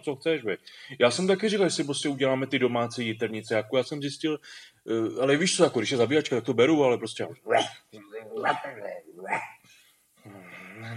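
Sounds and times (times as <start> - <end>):
speech: 0.0 - 9.6, 10.2 - 10.9
dog barking and yelping excitedly: 7.5 - 7.8.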